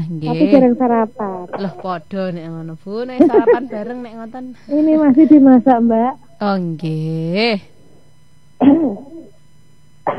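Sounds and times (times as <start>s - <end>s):
speech: 0.2s - 7.7s, 8.6s - 9.1s
person coughing: 8.6s - 9.3s.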